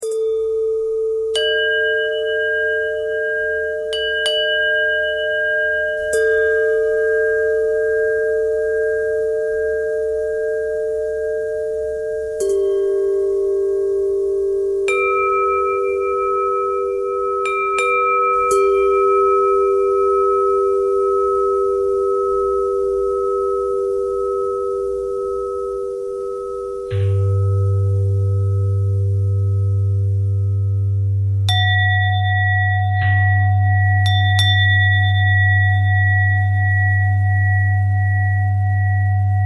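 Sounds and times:
bending bells: 0.0 - 39.4.

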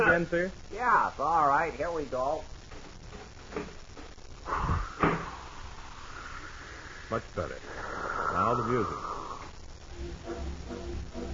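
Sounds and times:
speech: 0.2 - 2.6, 3.5 - 3.8, 7.1 - 9.1
door pulled shut with a solid thump: 5.0 - 5.3.

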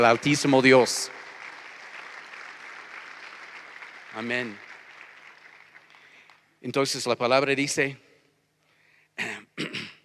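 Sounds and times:
speech: 0.0 - 1.2, 4.2 - 4.6, 6.6 - 8.0
church congregation applauding: 0.0 - 7.1.

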